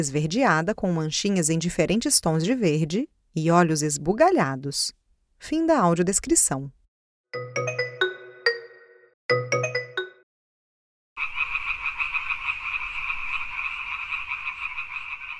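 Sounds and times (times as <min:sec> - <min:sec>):
speech: 0:00.0 - 0:07.4
short chiming musical phrases: 0:07.4 - 0:10.2
dense chorus of dancing frog calls buzzing and trilling: 0:11.2 - 0:15.3.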